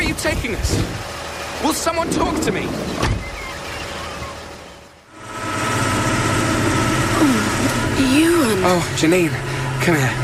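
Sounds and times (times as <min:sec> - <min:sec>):
truck engine idling: 0:00.0 - 0:10.2
speech: 0:00.2 - 0:01.0, 0:01.6 - 0:03.2, 0:08.6 - 0:10.2.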